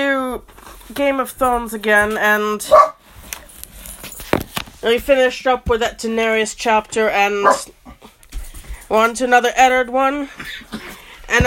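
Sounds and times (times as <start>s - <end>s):
speech: 0.4s - 2.9s, 4.8s - 7.8s, 8.9s - 11.4s
dog barking: 2.7s - 3.0s, 7.4s - 7.7s.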